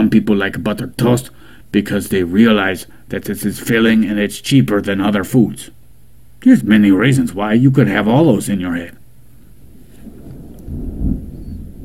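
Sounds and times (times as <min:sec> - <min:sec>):
speech: 0:00.0 - 0:05.8, 0:06.4 - 0:09.0
deep low rumble of thunder: 0:09.6 - 0:11.8.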